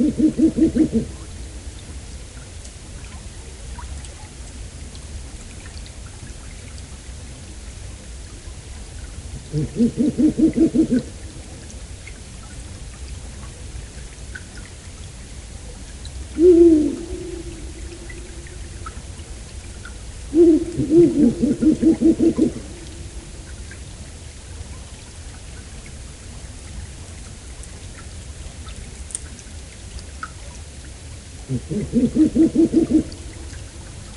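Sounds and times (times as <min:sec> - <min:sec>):
female owl hooting to call the male to the nest: 0:00.0 - 0:01.2, 0:09.5 - 0:11.1, 0:16.4 - 0:19.0, 0:20.3 - 0:23.3, 0:31.5 - 0:33.5
speech: 0:00.0 - 0:01.2, 0:09.6 - 0:11.2, 0:31.7 - 0:32.7
steady hiss: 0:00.0 - 0:34.1.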